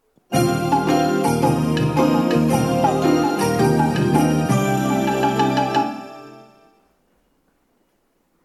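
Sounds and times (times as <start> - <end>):
train departure signal melody from a BOSE ceiling speaker: 0.3 - 7.0.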